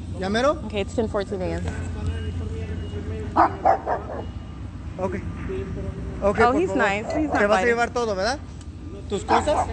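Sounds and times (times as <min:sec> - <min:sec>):
speech: 0:00.2 - 0:02.0, 0:03.4 - 0:04.4, 0:05.0 - 0:09.7
dog barking: 0:03.4 - 0:04.3, 0:07.0 - 0:07.7, 0:09.3 - 0:09.7.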